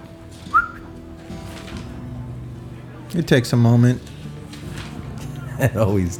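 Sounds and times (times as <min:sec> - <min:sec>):
person whistling to call a cat: 0:00.5 - 0:00.9
speech: 0:03.1 - 0:04.2, 0:05.6 - 0:06.1.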